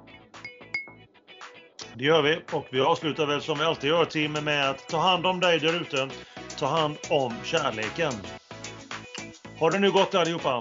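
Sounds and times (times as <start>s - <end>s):
glasses clinking in a toast: 0.4s - 1.0s
speech: 2.0s - 8.4s, 9.6s - 10.6s.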